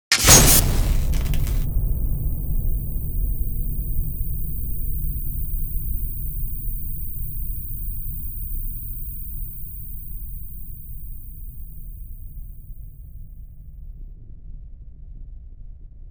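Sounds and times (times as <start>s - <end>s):
TV explosion: 0.1s - 12.5s
ear whistle: 0.3s - 13.2s.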